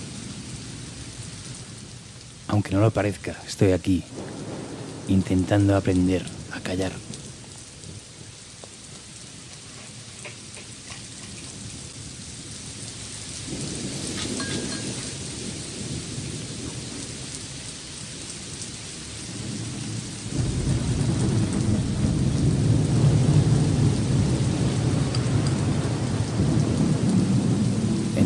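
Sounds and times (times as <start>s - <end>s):
rain pouring steadily: 0.0s - 28.2s
speech: 2.5s - 4.4s, 5.1s - 7.1s
deep rolling thunder: 4.0s - 8.3s, 13.3s - 17.6s, 19.2s - 28.2s.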